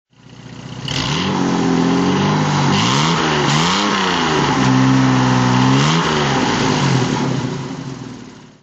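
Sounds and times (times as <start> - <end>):
1957 Jaguar XK 150 3.4 litre FHC engine throttle: 0.5 - 8.5.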